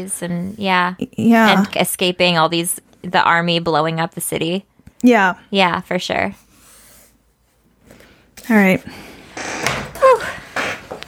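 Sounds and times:
speech: 0.0 - 6.4, 8.4 - 9.5
squeaky chair creaking: 9.3 - 11.0.

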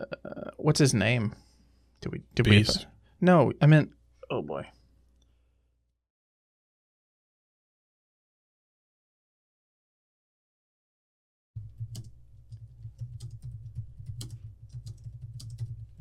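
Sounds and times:
speech: 0.6 - 1.4, 2.4 - 4.0, 4.6 - 4.8
typing on a computer keyboard while running a web search: 11.6 - 15.9.

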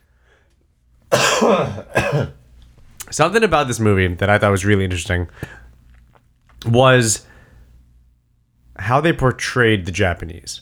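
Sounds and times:
harsh rasping coughs: 1.1 - 2.4
speech: 1.4 - 2.4, 3.1 - 5.6, 6.6 - 7.3, 8.8 - 10.6.

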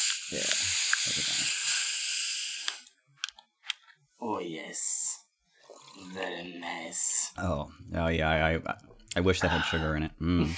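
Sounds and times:
drink can cracked open: 0.0 - 1.6
hiss of escaping gas from a drink can: 0.0 - 2.9
speech: 4.4 - 5.0, 6.0 - 10.5.

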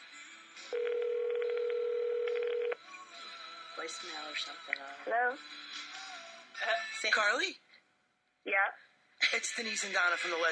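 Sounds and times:
telephone ringback tone as a call is placed: 0.8 - 2.8
speech: 3.8 - 5.9, 6.6 - 7.6, 8.4 - 10.4.

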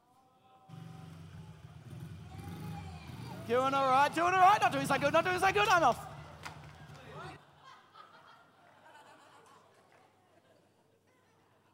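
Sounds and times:
child's small motorbike engine running, ridden by a grown man: 0.7 - 7.4
laughter: 2.8 - 11.7
speech: 3.5 - 6.1.

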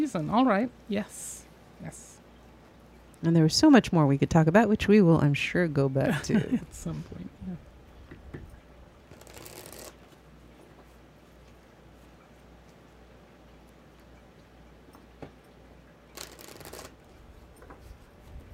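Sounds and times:
speech: 0.0 - 2.2, 3.2 - 7.7
low steady hum: 0.0 - 18.5
riffle-shuffling a deck of cards: 9.1 - 10.2, 16.1 - 17.1
soft handling and tapping of a deck of cards: 16.2 - 16.9.

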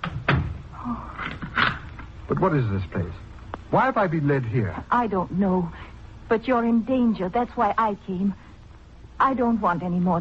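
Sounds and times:
door swinging shut with a solid thump: 0.0 - 2.1
speech: 2.3 - 8.4, 9.2 - 10.2.

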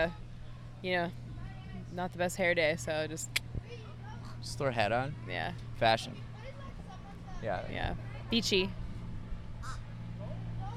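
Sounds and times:
speech: 0.0 - 0.2, 0.8 - 1.2, 1.9 - 3.4, 4.4 - 6.3, 7.4 - 8.8
steady low hum: 0.0 - 10.7
bird giving a short harsh call outdoors: 9.6 - 10.4.

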